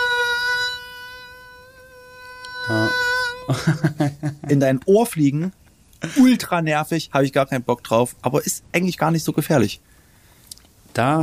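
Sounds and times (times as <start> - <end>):
human voice imitating a buzzing mosquito: 0.0 - 3.6
speech: 2.7 - 9.9, 11.0 - 11.2
laughter: 3.5 - 4.6.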